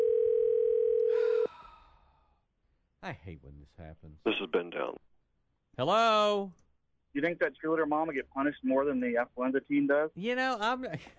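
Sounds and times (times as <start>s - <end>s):
electronic ringback tone on an outgoing phone call: 0.0s - 1.5s
speech: 3.1s - 5.1s, 5.8s - 11.1s.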